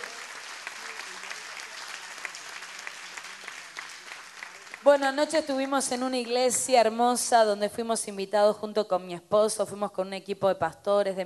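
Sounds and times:
applause from a large gathered crowd: 0.0 - 6.0
speech: 4.8 - 11.2.

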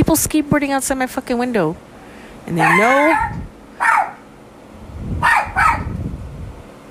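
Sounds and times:
speech: 0.1 - 1.9, 2.5 - 3.4
dog barking: 2.6 - 4.2, 5.2 - 5.9.

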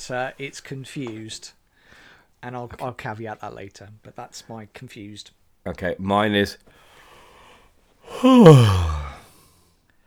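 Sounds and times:
speech: 0.0 - 1.6, 2.4 - 6.9, 8.1 - 9.0
person yawning: 8.1 - 9.2.

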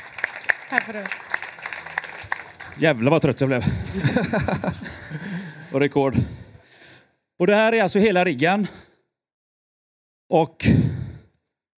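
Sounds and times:
scattered hand claps: 0.0 - 2.9
laughter: 0.2 - 6.6
speech: 0.7 - 1.3, 2.8 - 6.4, 7.4 - 8.8, 10.3 - 10.9.

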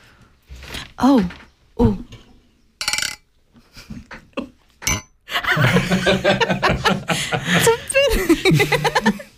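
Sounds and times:
speech: 1.0 - 2.1
clattering: 2.8 - 3.2
glasses clinking in a toast: 2.8 - 3.2, 4.8 - 5.2
chuckling laughter: 5.3 - 9.3.

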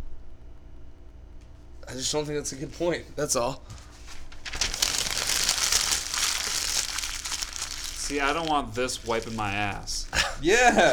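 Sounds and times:
speech: 1.9 - 3.8, 8.1 - 10.9
paper being crumpled into a ball: 3.7 - 10.1.

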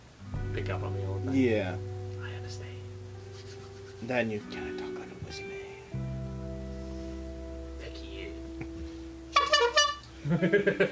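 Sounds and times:
speech: 0.6 - 1.9, 2.5 - 2.7, 4.0 - 5.6, 10.3 - 10.9
squeaky clown horn honking: 9.3 - 10.1.

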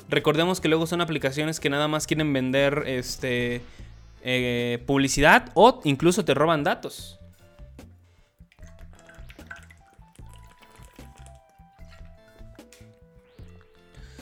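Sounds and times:
speech: 0.1 - 7.2
liquid sloshing: 8.4 - 13.7
person drinking water: 8.4 - 14.2.

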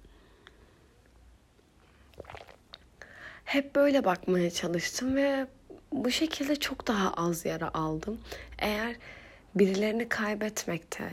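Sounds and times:
person sipping coffee: 1.9 - 3.0
speech: 3.5 - 11.1.

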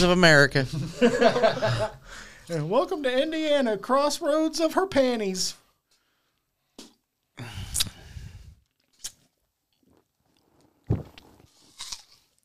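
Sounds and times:
speech: 0.0 - 5.6
laughter: 0.8 - 2.0
swallowing and wet mouth noises: 7.5 - 12.4.

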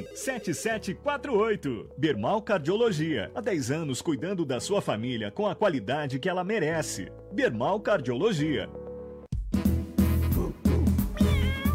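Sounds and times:
steady backing music: 0.0 - 3.8, 6.7 - 11.7
speech: 0.0 - 8.8
cat meowing: 11.1 - 11.7.

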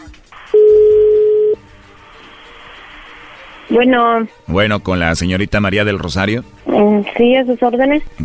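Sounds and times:
telephone ringback tone over a phone line: 0.5 - 1.6
speech: 3.7 - 8.2.

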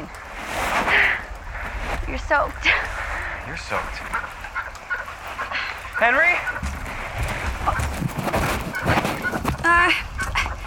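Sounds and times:
steady rush of noise: 0.0 - 10.6
speech: 2.3 - 4.4, 6.0 - 6.7
duck quacking: 3.7 - 10.6.

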